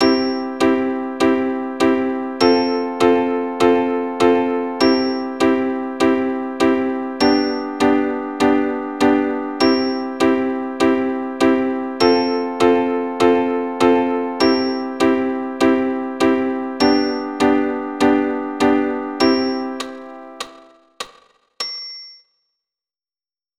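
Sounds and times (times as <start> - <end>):
keyboard playing chords: 0.0 - 20.9.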